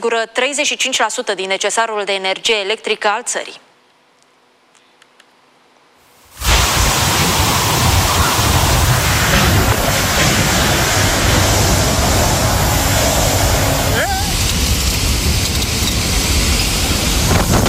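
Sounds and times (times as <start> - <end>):
speech: 0.0 - 3.7
heavy cloudburst rain downpour: 6.3 - 17.6.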